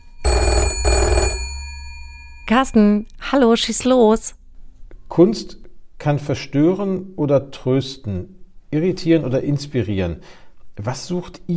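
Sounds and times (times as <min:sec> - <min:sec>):
telephone ringing: 0:00.0 - 0:02.8
speech: 0:02.5 - 0:04.4, 0:05.1 - 0:11.5.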